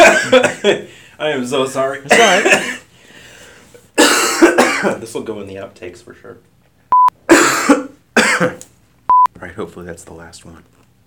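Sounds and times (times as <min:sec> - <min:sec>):
harsh raspy coughs: 0:00.0 - 0:00.9, 0:02.1 - 0:02.9, 0:04.0 - 0:05.0, 0:07.2 - 0:08.6
speech: 0:00.3 - 0:02.8, 0:04.0 - 0:06.5, 0:08.4 - 0:08.7, 0:09.4 - 0:10.8
brief electronic beep: 0:06.9 - 0:07.2.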